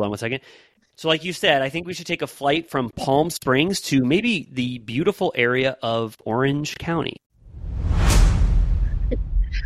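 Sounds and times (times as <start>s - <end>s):
speech: 0.0s - 7.2s
whoosh transition sound effect: 7.4s - 9.6s.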